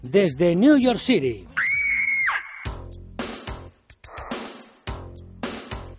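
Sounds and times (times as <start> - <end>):
speech: 0.0 - 1.8
shrill scream sliding downward in pitch: 1.6 - 2.8.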